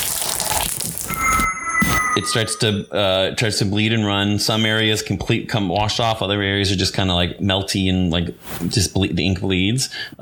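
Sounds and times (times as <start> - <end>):
water pouring and splashing out of a basin: 0.0 - 1.5
speech: 2.2 - 10.2.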